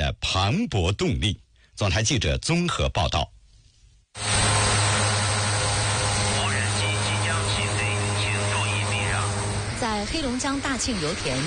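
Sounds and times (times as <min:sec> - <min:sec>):
speech: 0:00.1 - 0:03.4, 0:04.2 - 0:04.5, 0:09.8 - 0:11.4
constant low hum: 0:03.3 - 0:11.4
inspection drone propellers whirring over an oilfield work area in Daqing China: 0:04.2 - 0:11.4.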